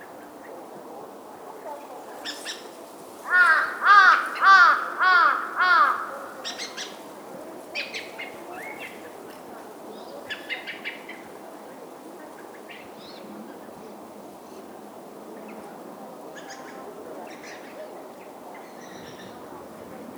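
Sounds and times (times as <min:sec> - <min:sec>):
crow cawing hoarsely: 0:03.3 - 0:06.8.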